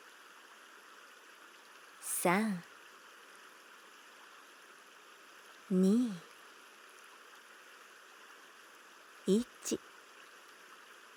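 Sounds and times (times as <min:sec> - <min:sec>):
babbling flowing stream: 0:00.0 - 0:11.1
soft brief spoken voice: 0:02.0 - 0:02.6, 0:05.7 - 0:06.2, 0:09.3 - 0:09.8
speech: 0:02.2 - 0:02.7, 0:05.7 - 0:06.3, 0:09.3 - 0:09.9.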